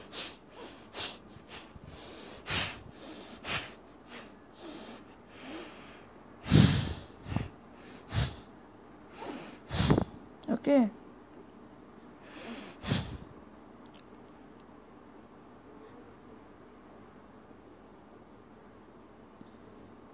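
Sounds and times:
forceful nose breathing during a breathing exercise: 0.0s - 8.5s, 9.1s - 10.2s, 12.2s - 13.3s
speech: 10.6s - 11.0s.

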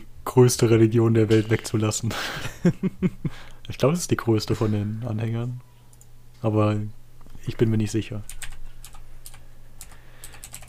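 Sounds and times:
speech: 0.4s - 5.7s, 6.4s - 8.5s
laughter: 2.1s - 3.4s
typing on a computer keyboard: 8.3s - 10.6s.

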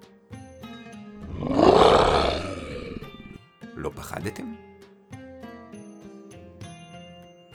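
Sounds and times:
person's voice imitating a scary lion roar: 1.2s - 3.4s
speech: 4.0s - 4.7s.

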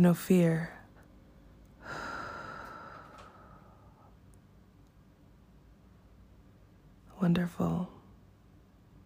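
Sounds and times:
speech: 0.0s - 0.8s, 7.2s - 8.0s
slow airy exhale: 1.8s - 4.2s.

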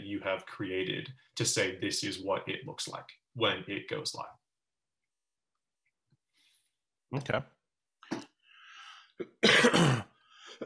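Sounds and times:
speech: 0.2s - 4.4s, 7.1s - 8.2s, 9.2s - 10.6s
person clearing throat: 9.2s - 10.6s
person coughing: 9.2s - 10.6s.

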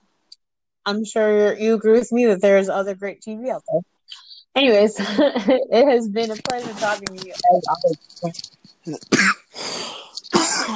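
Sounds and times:
speech: 0.8s - 10.7s
soft throat noises: 6.3s - 10.7s
harsh cough and raspy breathy hack: 8.9s - 10.7s.

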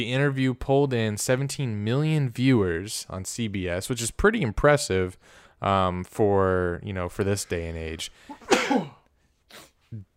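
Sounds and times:
speech: 0.0s - 10.1s
sneeze: 8.3s - 9.8s.

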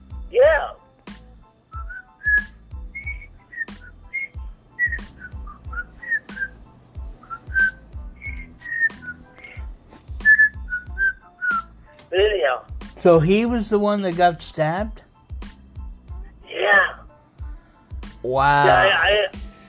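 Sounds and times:
man whistling a bright TV theme tune: 1.7s - 11.8s
speech: 12.5s - 15.0s, 18.3s - 19.4s.

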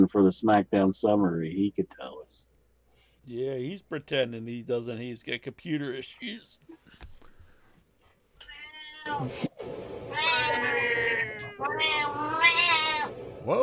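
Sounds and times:
speech: 0.0s - 2.5s, 3.2s - 7.1s, 9.0s - 13.6s
cats fighting with yowls and caterwauling: 8.4s - 9.3s, 10.1s - 13.2s.

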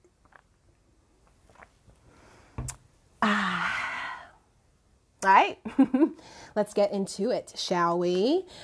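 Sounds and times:
sipping of water: 1.2s - 2.8s
speech: 5.4s - 8.6s.

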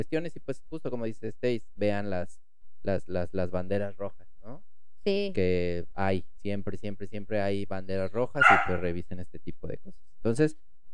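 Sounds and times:
speech: 0.0s - 10.7s
small dog barking: 8.4s - 8.9s.

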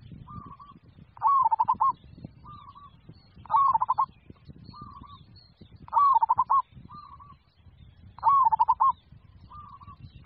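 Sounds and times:
Zebra dove song of rhythmic coos: 0.4s - 1.9s, 3.5s - 4.0s, 5.9s - 7.2s, 8.2s - 10.2s.

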